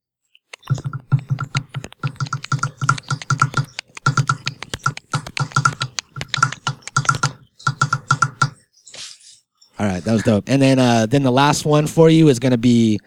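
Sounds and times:
rain tapping on a windowsill: 0.7 - 8.5
speech: 9.9 - 13.0.

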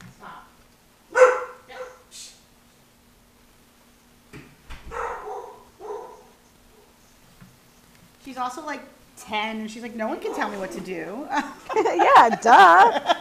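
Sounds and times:
faint steady hum: 0.0 - 13.1
dog barking: 1.1 - 2.1, 4.9 - 7.0, 10.2 - 10.6
speech: 8.3 - 13.1
laughter: 11.3 - 13.1.

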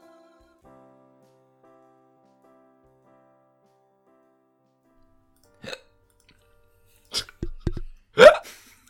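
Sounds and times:
person hiccuping: 5.6 - 5.9, 7.1 - 7.4, 8.2 - 8.4.

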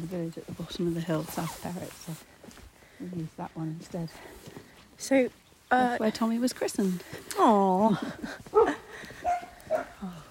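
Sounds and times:
speech: 0.0 - 2.3, 3.0 - 9.1
dogs barking: 8.5 - 10.0.

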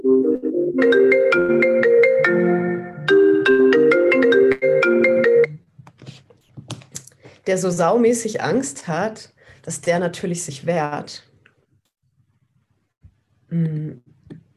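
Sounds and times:
speech: 0.8 - 1.1, 7.5 - 11.3, 13.5 - 14.1
phone ringtone announcing an incoming call: 0.8 - 5.6.

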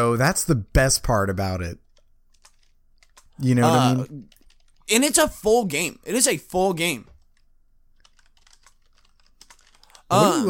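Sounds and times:
speech: 0.0 - 1.8, 3.4 - 7.1, 10.1 - 10.4
typing business emails on a computer keyboard: 1.9 - 3.4, 4.3 - 4.9, 7.1 - 10.1.

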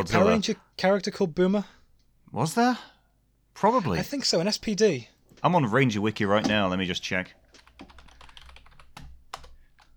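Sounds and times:
speech: 0.0 - 2.9, 3.6 - 7.9
rapid keystrokes on a computer keyboard: 7.5 - 9.9.

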